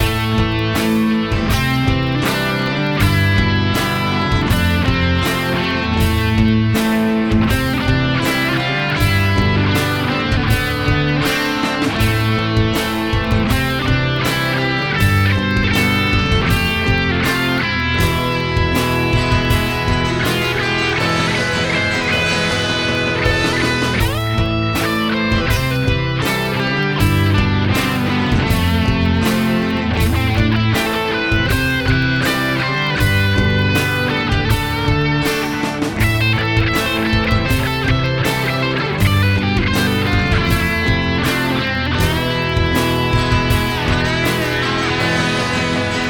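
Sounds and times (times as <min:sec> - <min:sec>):
instrumental solo: 0:00.0 - 0:46.0.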